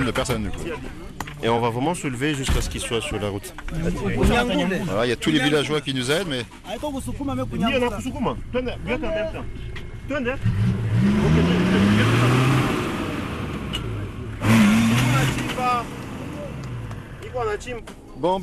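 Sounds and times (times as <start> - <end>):
speech: 0.0 - 11.9, 17.4 - 18.4
car engine revving as the vehicle pulls away: 8.4 - 17.5.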